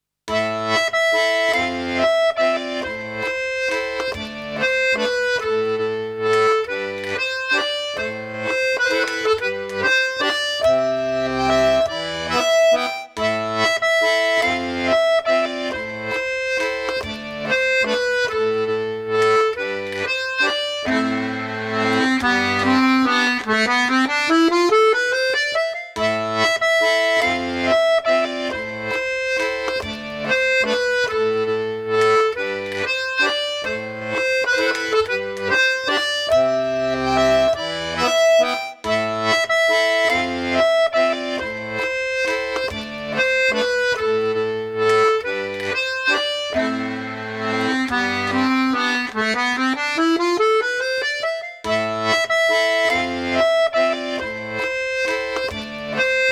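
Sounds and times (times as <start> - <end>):
accordion: 0.3 - 56.3.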